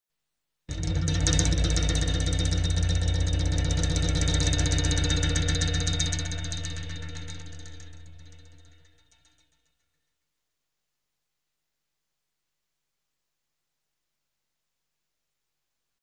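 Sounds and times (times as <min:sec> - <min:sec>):
spinning and shaking: 0:00.7 - 0:09.6.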